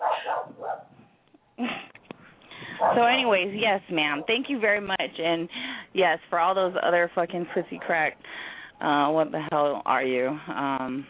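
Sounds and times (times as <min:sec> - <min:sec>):
dog barking: 0:00.0 - 0:00.9, 0:02.8 - 0:03.0
speech: 0:03.0 - 0:11.0.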